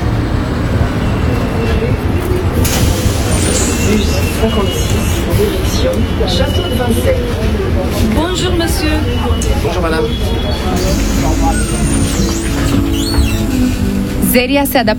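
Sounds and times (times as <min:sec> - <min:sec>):
city bus pulling up at a stop, deep engine rumble: 0:00.0 - 0:14.9
murmur of voices: 0:01.2 - 0:14.9
burst of hiss from a city bus: 0:02.6 - 0:04.3
speech: 0:14.4 - 0:14.9.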